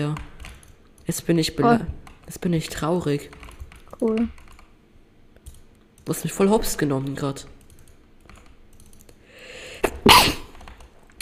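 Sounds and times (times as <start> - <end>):
speech: 0.0 - 0.3, 1.1 - 3.4, 4.0 - 4.4, 6.1 - 7.6
intake of breath: 9.2 - 9.9
sneeze: 9.9 - 10.5.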